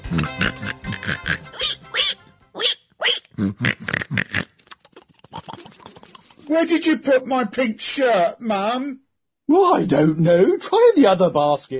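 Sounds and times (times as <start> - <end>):
pig squealing and grunting: 0.0 - 6.3
speech: 0.1 - 1.2, 6.5 - 11.7.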